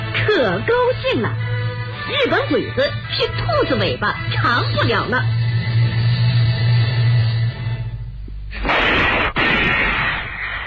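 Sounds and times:
low rumbling drone: 0:00.0 - 0:10.6
speech: 0:00.4 - 0:01.5, 0:02.1 - 0:05.4
gunfire: 0:08.6 - 0:10.6.

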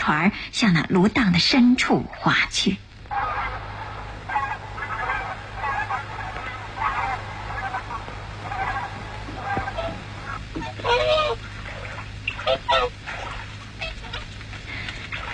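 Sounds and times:
speech: 0:00.0 - 0:02.8
steady low hum: 0:00.0 - 0:15.3
swans calling in loud nasal honks: 0:03.0 - 0:15.3.

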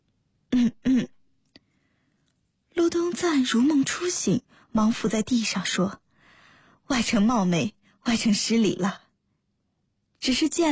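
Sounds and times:
throat clearing: 0:00.5 - 0:01.2
soft cough: 0:00.6 - 0:01.2
speech: 0:03.2 - 0:06.0, 0:06.9 - 0:09.0, 0:10.2 - 0:10.7.

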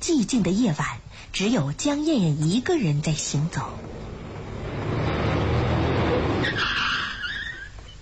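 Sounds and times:
speech: 0:00.0 - 0:04.0
car engine rushing on a quiet road at night: 0:03.1 - 0:07.6
car tires screeching as it skids to a halt: 0:03.2 - 0:07.9.

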